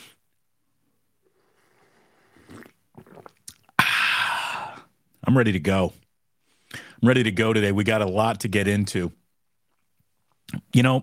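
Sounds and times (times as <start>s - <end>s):
short wet slurping gulps of someone sipping a drink: 1.2s - 5.0s
speech: 5.3s - 6.0s, 6.7s - 9.2s, 10.5s - 11.0s.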